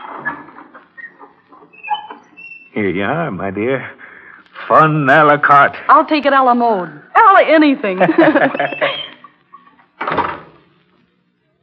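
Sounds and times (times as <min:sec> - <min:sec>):
door swinging shut with a thud: 0:00.0 - 0:02.8, 0:10.0 - 0:10.8
speech: 0:02.8 - 0:04.0, 0:04.7 - 0:09.0
laughter: 0:07.9 - 0:09.7.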